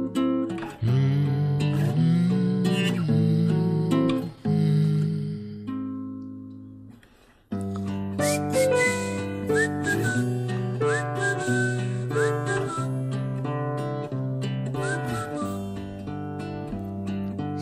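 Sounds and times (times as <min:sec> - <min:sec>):
dense steady instrumental backing: 0:00.0 - 0:17.6
village shepherd whistling short phrases: 0:00.8 - 0:05.4, 0:08.2 - 0:13.6, 0:14.7 - 0:16.1.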